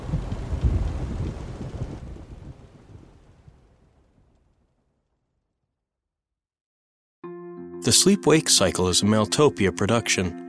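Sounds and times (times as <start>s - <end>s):
gusting wind: 0.0s - 4.1s
deep rolling rumble of thunder: 0.0s - 4.8s
rain: 0.0s - 5.0s
speech: 7.8s - 10.4s.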